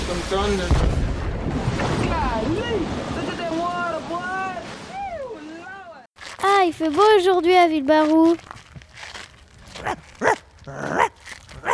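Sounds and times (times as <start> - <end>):
speech: 0.3 - 3.3, 6.6 - 8.5
dog barking: 9.8 - 11.7.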